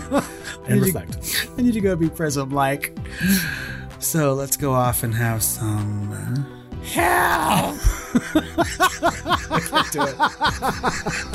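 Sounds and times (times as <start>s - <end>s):
speech: 0.1s - 11.3s
voice imitating a mutated bear's human-like scream: 6.9s - 7.9s
laughter: 7.5s - 11.3s.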